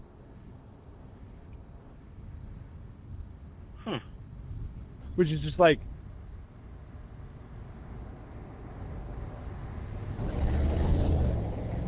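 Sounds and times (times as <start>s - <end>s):
speech: 3.9s - 4.2s, 5.2s - 5.9s
car engine rumbling as the car drives past: 8.3s - 11.8s.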